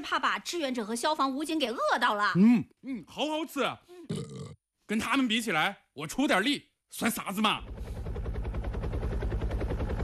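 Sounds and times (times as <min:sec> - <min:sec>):
speech: 0:00.0 - 0:07.8
firefighting helicopter rotor chop while ferrying water to a blaze: 0:07.0 - 0:10.0.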